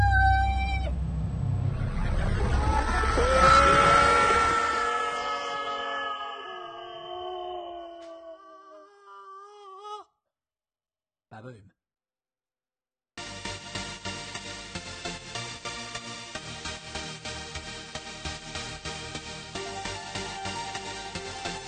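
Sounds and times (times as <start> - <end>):
engines firing up: 0.0 - 5.2.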